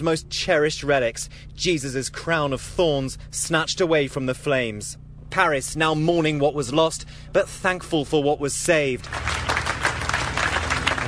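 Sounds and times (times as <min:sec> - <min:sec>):
speech: 0:00.0 - 0:09.3
crowd applauding: 0:09.0 - 0:11.0.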